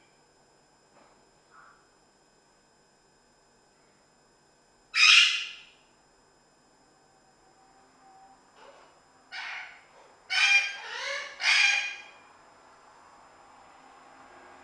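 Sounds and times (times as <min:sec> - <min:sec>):
parrot squawking: 0:05.0 - 0:05.6, 0:09.3 - 0:12.2.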